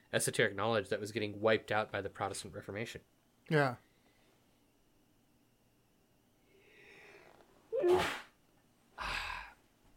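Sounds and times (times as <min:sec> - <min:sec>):
quiet hiss: 0:00.0 - 0:09.9
speech: 0:00.1 - 0:03.9
sharp sneeze: 0:07.7 - 0:08.3.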